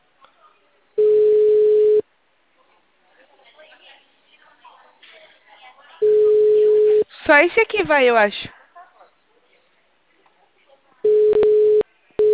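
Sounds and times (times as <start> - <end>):
ringback tone on a phone line: 1.0 - 2.0, 6.0 - 7.0, 11.1 - 12.3
speech: 7.3 - 8.5.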